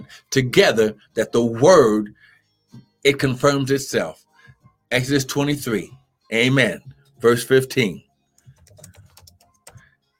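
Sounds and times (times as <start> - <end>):
speech: 0.1 - 4.2, 4.9 - 8.1
typing on a computer keyboard: 8.4 - 9.8.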